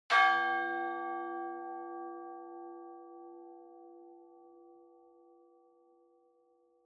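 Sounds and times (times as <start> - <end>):
church bell: 0.1 - 6.8.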